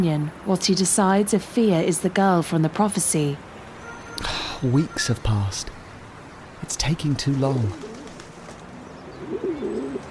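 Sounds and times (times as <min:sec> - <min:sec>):
speech: 0:00.0 - 0:03.5, 0:04.2 - 0:05.8, 0:06.6 - 0:07.8
pigeons cooing: 0:07.5 - 0:10.0.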